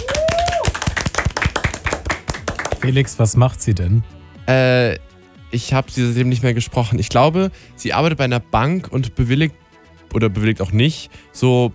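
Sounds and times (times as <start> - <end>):
hands clapping in quick applause: 0.0 - 3.2
speech: 2.8 - 11.7.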